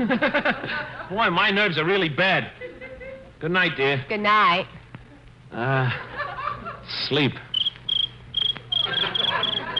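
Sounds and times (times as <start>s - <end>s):
laughter: 0.0s - 1.2s, 2.6s - 3.3s, 5.6s - 7.2s, 8.7s - 9.7s
speech: 0.0s - 2.6s, 3.4s - 4.8s, 5.5s - 6.1s, 6.9s - 7.5s
faint low hum: 0.0s - 9.7s
cricket chirping by rubbing its hind legs together in the country at night: 7.5s - 9.7s.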